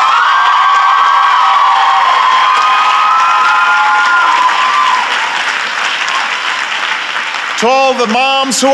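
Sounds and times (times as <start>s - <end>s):
high-pitched cheers and whoops at a graduation ceremony: 0.0s - 6.8s
large crowd applauding at a graduation ceremony: 0.0s - 8.7s
speech: 7.6s - 8.7s.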